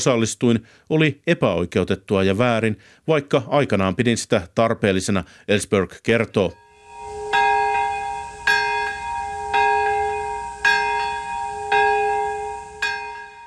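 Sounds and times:
speech: 0.0 - 6.6
memorial bells ringing in Hiroshima and Nagasaki Japan: 6.5 - 13.4.

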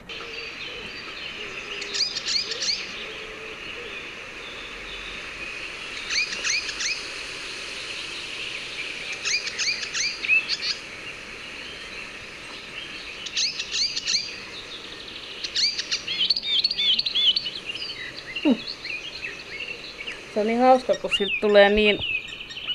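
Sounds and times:
icterine warbler singing: 0.0 - 22.7
steady outdoor hiss: 0.0 - 22.7
speech: 20.4 - 22.1.

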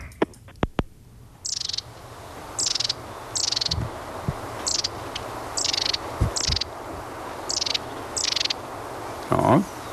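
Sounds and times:
outdoor hiss: 0.0 - 9.9
long-tailed tit calls: 1.4 - 1.9, 2.6 - 3.9, 4.6 - 6.8, 7.4 - 8.6
speech: 9.5 - 9.7.

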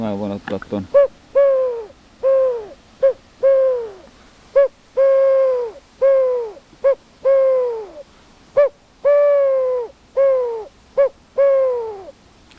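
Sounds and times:
speech: 0.2 - 1.1
cylindrical wooden bird call imitating a wood pigeon: 0.9 - 8.0, 8.6 - 12.1.

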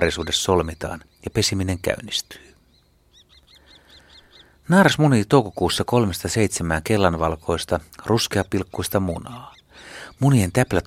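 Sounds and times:
speech: 0.0 - 2.5, 4.7 - 10.8
common kestrel giving sharp high kee calls: 0.0 - 10.8.

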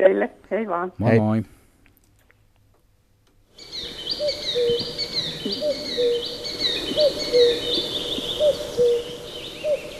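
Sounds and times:
speech: 0.0 - 1.6, 7.0 - 9.9
recorded birdsong played on a listener's request: 3.5 - 9.9.

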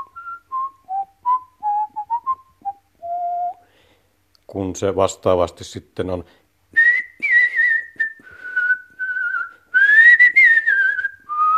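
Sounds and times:
person whistling a short melodic tune: 0.0 - 3.7, 6.8 - 11.5
speech: 4.5 - 6.4.

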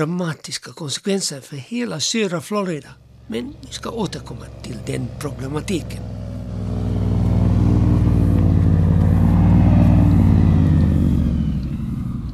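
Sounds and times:
speech: 0.0 - 6.8
airboat propeller engine roaring: 3.0 - 12.3.

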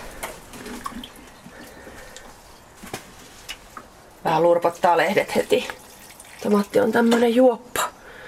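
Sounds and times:
water pouring onto a tomato plant: 0.0 - 1.8, 4.6 - 7.4
speech: 4.3 - 5.8, 6.4 - 7.7.

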